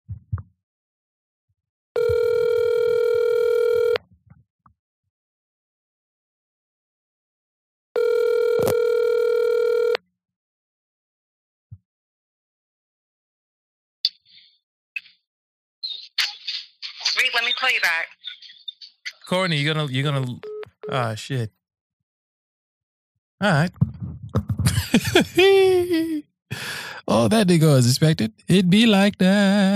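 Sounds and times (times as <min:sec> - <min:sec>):
electronic ringback tone of an outgoing phone call: 0:02.0 - 0:04.0, 0:08.0 - 0:10.0
speech: 0:17.6 - 0:18.2, 0:19.3 - 0:21.6, 0:23.4 - 0:29.7
laughter: 0:24.6 - 0:26.2.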